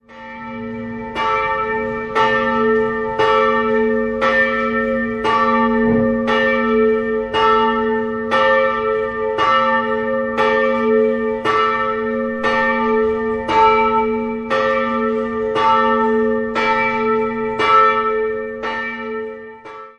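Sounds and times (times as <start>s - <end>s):
church bells in Regensburg: 0.0s - 19.9s.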